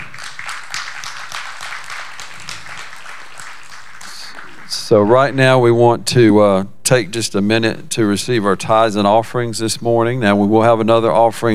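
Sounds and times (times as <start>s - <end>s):
church service crowd clapping hands: 0.0s - 5.5s
speech: 4.8s - 11.5s.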